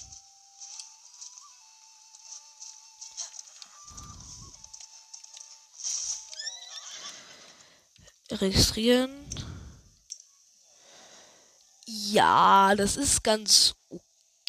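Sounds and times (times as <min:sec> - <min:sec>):
horse whinnying with a shrill quavering neigh: 0:06.5 - 0:07.3
speech: 0:08.3 - 0:09.4, 0:12.1 - 0:13.8.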